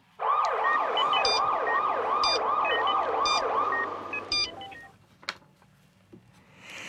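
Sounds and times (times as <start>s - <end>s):
ambulance siren wailing on the way to a hospital: 0.2s - 4.9s.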